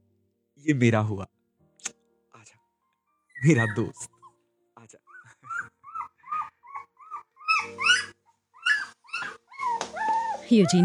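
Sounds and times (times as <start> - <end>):
speech: 0.6 - 1.4, 3.4 - 4.1, 10.5 - 10.8
puppy whimpering and yipping: 3.3 - 4.4, 5.0 - 10.8.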